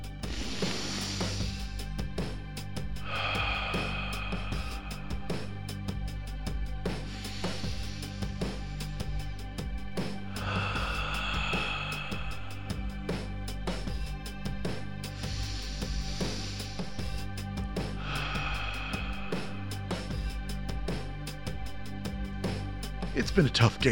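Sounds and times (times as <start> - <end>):
steady tonal background: 0.0 - 23.9
sports team taking deep breaths in a huddle: 0.2 - 2.0, 3.0 - 5.8, 7.0 - 9.0, 10.2 - 13.6, 15.1 - 20.2
speech: 23.4 - 23.9.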